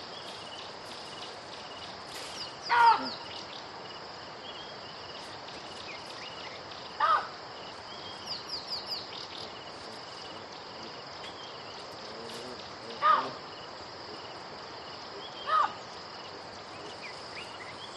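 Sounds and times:
insect buzzing: 0.0 - 17.9
baboon barks: 2.7 - 3.2, 7.0 - 7.4, 12.9 - 13.4, 15.4 - 15.8.

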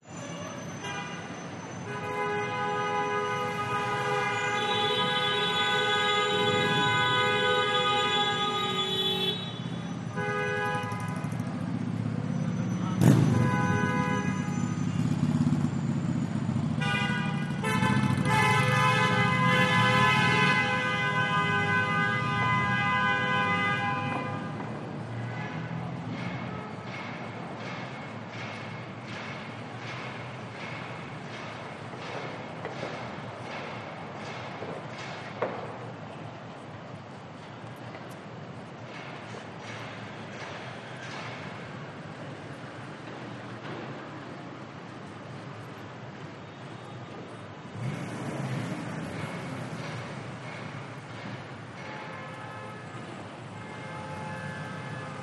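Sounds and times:
rush hour city traffic: 0.0 - 55.2
cars honking: 0.6 - 11.4, 12.3 - 27.0, 47.7 - 55.2.

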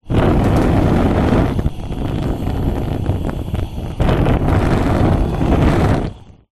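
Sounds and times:
household cooker hob gas flame blowing: 0.0 - 6.5.

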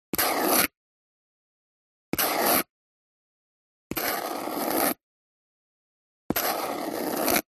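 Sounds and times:
dip pen handwriting: 0.1 - 0.8, 2.1 - 2.7, 3.9 - 5.0, 6.3 - 7.5.

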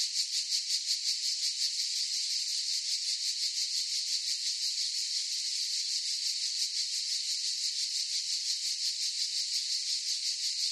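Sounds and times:
cicadas droning in a forest chorus: 0.0 - 10.7.

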